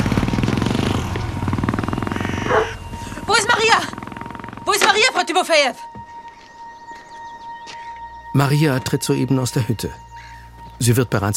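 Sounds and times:
motorcycle engine revving and pulling away: 0:00.0 - 0:05.4
speech: 0:05.3 - 0:05.9, 0:08.4 - 0:10.0, 0:10.8 - 0:11.3.

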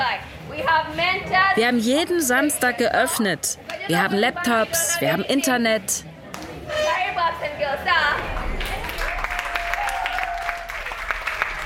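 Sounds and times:
voices chattering and calling out: 0:00.0 - 0:09.3
speech: 0:00.8 - 0:06.1
group applauding the trainers: 0:08.2 - 0:11.6.

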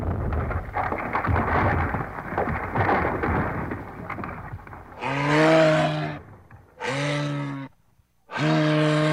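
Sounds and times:
large ice chunks breaking off a glacier: 0:00.0 - 0:05.0
loud low animal bellows: 0:05.0 - 0:09.1.

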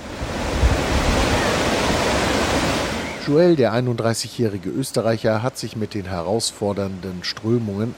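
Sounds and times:
ocean surf breaking at a steep coast: 0:00.0 - 0:03.8
speech: 0:03.3 - 0:07.9.

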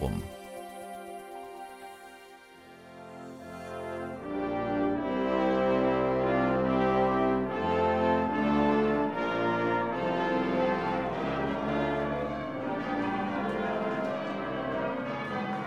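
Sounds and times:
wedding church bells pealing: 0:00.0 - 0:15.6.

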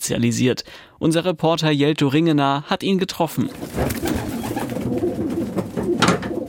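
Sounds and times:
speech: 0:00.0 - 0:05.0
pigeons cooing: 0:03.6 - 0:06.4.

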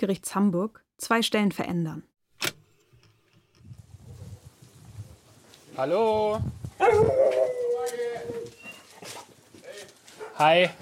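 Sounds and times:
speech: 0:00.0 - 0:02.6, 0:05.8 - 0:08.4, 0:10.4 - 0:10.7
dog yelping and whimpering: 0:06.8 - 0:09.0.

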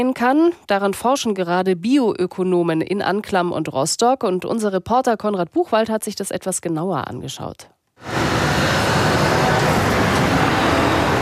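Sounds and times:
speech: 0:00.0 - 0:08.2
trucks driving to the sugar factory in Anklam: 0:08.0 - 0:11.2.

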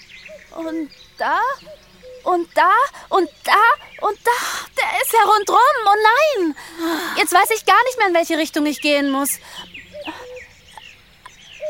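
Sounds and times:
cuckoo calling with whistled notes and chirps: 0:00.0 - 0:11.6
speech: 0:00.4 - 0:09.7.

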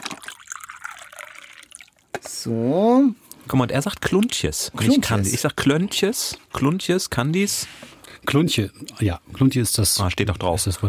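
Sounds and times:
tea pouring into a cup: 0:00.0 - 0:02.1
speech: 0:02.2 - 0:10.8.

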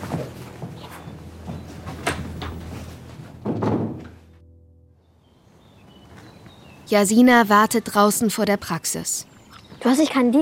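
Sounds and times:
door clicking and rattling: 0:03.4 - 0:04.2
speech: 0:06.9 - 0:10.3.

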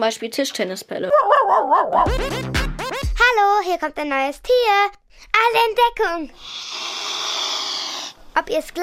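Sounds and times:
speech: 0:00.0 - 0:02.7, 0:03.3 - 0:07.2, 0:08.4 - 0:08.8
female swan hissing near her nest: 0:06.4 - 0:08.2.

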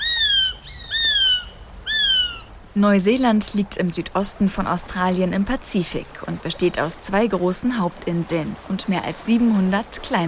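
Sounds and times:
kiwi calling with shrill whistles: 0:00.0 - 0:02.5
speech: 0:02.8 - 0:10.2.

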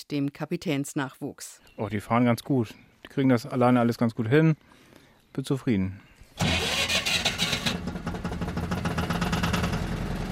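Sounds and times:
speech: 0:00.0 - 0:04.8, 0:05.4 - 0:06.6
small yellow cable ferry engine starting on a canal crossing: 0:06.4 - 0:10.3.

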